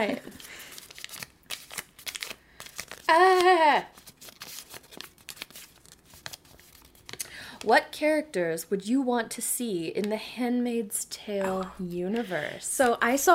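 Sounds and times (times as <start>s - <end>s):
speech: 0.0s - 0.6s, 3.1s - 3.9s, 7.6s - 13.3s
paper tube of a frozen treat tearing and crinkling: 0.0s - 7.2s.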